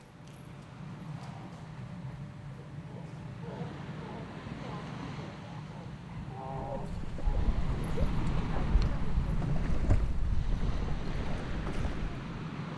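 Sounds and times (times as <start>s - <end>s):
boat engine rumble on open water: 0.8s - 12.7s
rushing wind buffeting the microphone: 6.1s - 12.7s.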